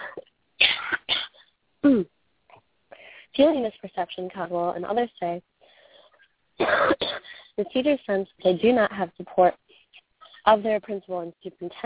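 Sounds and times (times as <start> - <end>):
person coughing: 0.0 - 2.0, 6.6 - 7.5
person clearing throat: 0.0 - 2.1, 6.6 - 7.3
speech: 1.9 - 2.2, 3.4 - 5.5, 6.6 - 9.6, 10.4 - 11.8.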